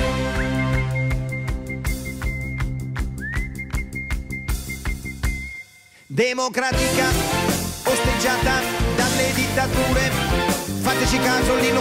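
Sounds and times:
rhythmic musical accompaniment with sharp percussive hits: 0.0s - 6.0s, 6.7s - 11.7s
steady high whistled single-note tune: 0.0s - 6.1s
speech: 6.2s - 11.7s.

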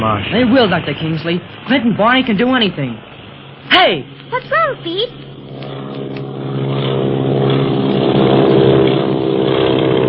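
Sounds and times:
speech: 0.0s - 5.3s
airplane engine droning overhead: 0.0s - 10.0s.

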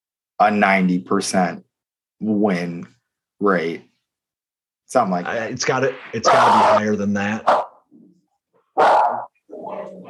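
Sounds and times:
speech: 0.4s - 3.9s, 4.9s - 7.7s, 8.8s - 9.1s
dog barking: 7.4s - 7.8s, 8.7s - 9.3s.

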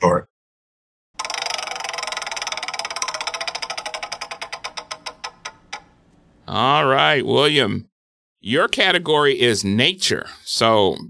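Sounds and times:
prize wheel clicker ticking while spinning: 1.2s - 6.0s
speech: 6.5s - 11.0s.

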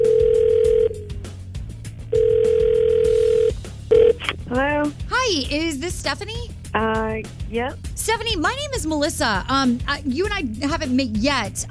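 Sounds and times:
outgoing phone call ringback tone: 0.0s - 1.1s, 2.1s - 4.2s
speech: 4.5s - 11.6s.

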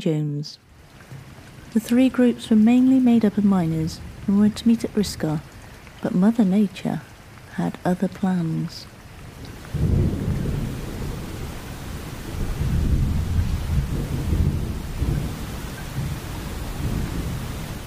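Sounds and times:
speech: 0.0s - 0.7s, 1.7s - 8.9s
heavy rain: 0.0s - 17.8s
deep rolling thunder: 9.3s - 17.8s.

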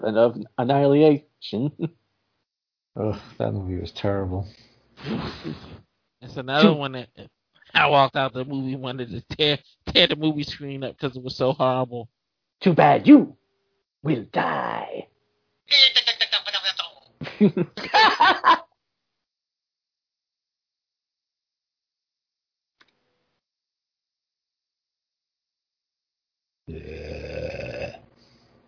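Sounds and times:
speech: 0.0s - 2.0s, 3.0s - 13.4s, 14.0s - 15.1s, 15.7s - 16.0s, 17.4s - 18.6s
loud buzzy fart: 5.0s - 5.9s
laughter: 17.2s - 18.7s.

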